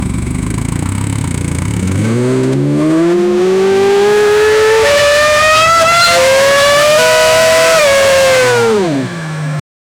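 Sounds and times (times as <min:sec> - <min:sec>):
modern V6 turbo hybrid race car engine: 0:00.0 - 0:09.6.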